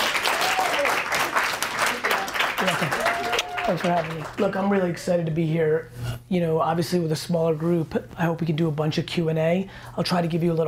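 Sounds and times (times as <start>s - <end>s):
audience applause: 0.0s - 4.7s
speech: 3.7s - 10.6s.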